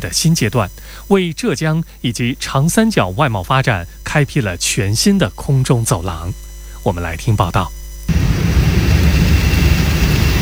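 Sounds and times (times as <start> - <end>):
speech: 0.0 - 8.3
cargo plane jet engines roaring at takeoff: 8.1 - 10.3.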